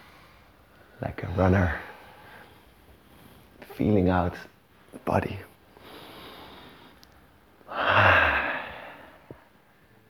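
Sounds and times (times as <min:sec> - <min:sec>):
speech: 0:01.0 - 0:01.9, 0:03.8 - 0:05.5
slow deep breath during a guided morning breathing session: 0:01.7 - 0:03.5, 0:05.8 - 0:10.0.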